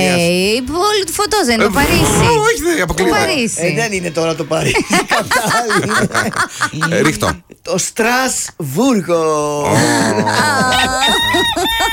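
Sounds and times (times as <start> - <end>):
speech: 0.2 - 11.9
laughter: 4.6 - 7.5, 9.6 - 11.9
rooster crowing: 10.3 - 11.9.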